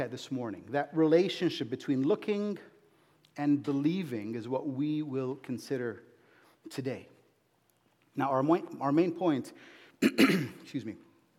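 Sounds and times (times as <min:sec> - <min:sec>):
speech: 0:00.0 - 0:02.7, 0:03.4 - 0:07.1, 0:08.2 - 0:11.0
man clearing throat at a microphone: 0:10.0 - 0:10.7.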